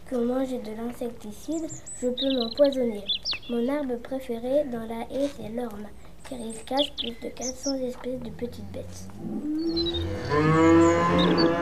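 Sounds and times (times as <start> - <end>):
speech: 0.1 - 11.5
faint cow lowing: 8.2 - 11.5
cow mooing near a hedge: 9.0 - 11.5.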